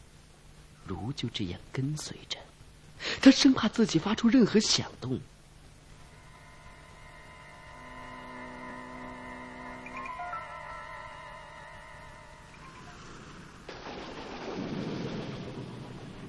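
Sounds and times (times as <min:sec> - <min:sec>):
speech: 0:00.9 - 0:02.4, 0:03.1 - 0:05.4
steady rain: 0:05.3 - 0:16.2
eerie sustained tone: 0:05.9 - 0:13.7
deep roll of thunder: 0:12.5 - 0:16.2.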